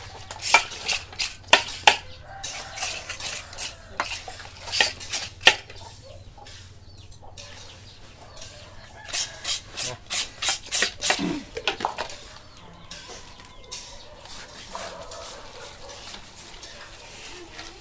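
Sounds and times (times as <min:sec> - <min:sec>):
food rubbed with salt before frying: 0:00.3 - 0:06.8, 0:09.0 - 0:11.2, 0:13.8 - 0:17.7.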